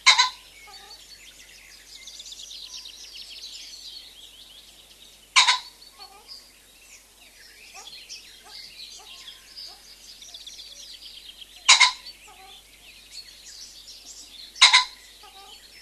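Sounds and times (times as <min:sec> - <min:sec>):
common pheasant crowing: 0:00.0 - 0:01.1, 0:05.3 - 0:06.4, 0:07.7 - 0:10.4, 0:11.6 - 0:12.7, 0:14.5 - 0:15.8
small birds chirping and twittering: 0:00.0 - 0:15.8.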